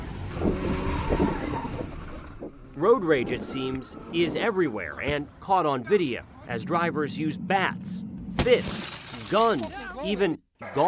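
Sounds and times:
truck engine roaring and revving as truck speeds away: 0.0 - 8.5
speech: 2.8 - 10.8.

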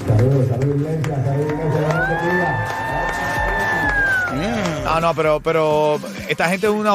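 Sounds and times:
speech: 0.1 - 2.8, 4.4 - 6.9
large crowd in a church cheering and screaming: 1.2 - 4.5.

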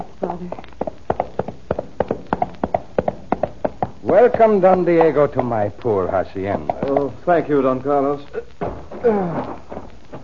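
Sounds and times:
horse hooves clip-clopping at a walking pace: 0.3 - 10.2
speech: 4.1 - 9.6.

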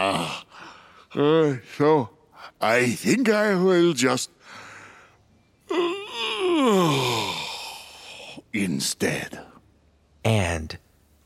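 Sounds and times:
person yawning: 0.0 - 1.3, 5.7 - 8.4
speech: 1.1 - 4.6, 5.7 - 6.0, 6.6 - 7.1, 8.5 - 9.5, 10.2 - 10.8.

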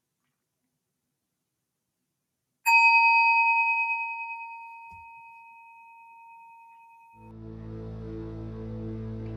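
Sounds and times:
meditation bell being struck: 2.7 - 7.3.

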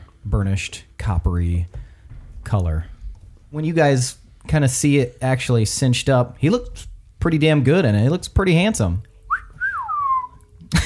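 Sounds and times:
speech: 0.3 - 1.8, 2.5 - 2.9, 3.5 - 9.1
low rumble: 1.6 - 5.9
loud falling whistle: 9.3 - 10.4.

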